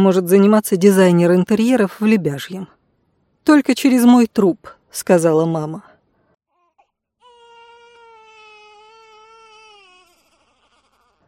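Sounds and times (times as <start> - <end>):
speech: 0.0 - 2.8, 3.4 - 5.9
infant crying with whimpering gasps, wail and sobbing: 6.5 - 11.2.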